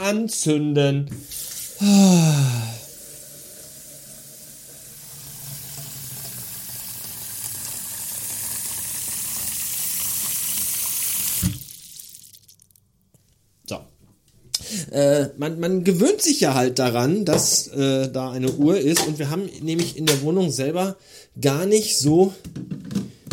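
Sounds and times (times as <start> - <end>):
speech: 0.1 - 2.7, 15.0 - 23.3
water running from a tap into a coffee machine water tank: 2.4 - 12.8.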